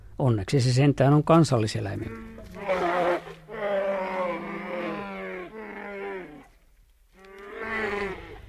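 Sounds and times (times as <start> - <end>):
speech: 0.2 - 2.8
brown bear deep drawn-out moaning calls and groan: 2.0 - 8.4.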